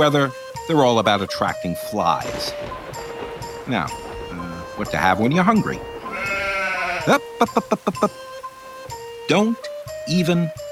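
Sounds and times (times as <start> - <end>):
speech: 0.0 - 3.1, 3.7 - 5.9, 7.1 - 8.3, 9.3 - 10.6
sheep bleating: 6.0 - 7.2.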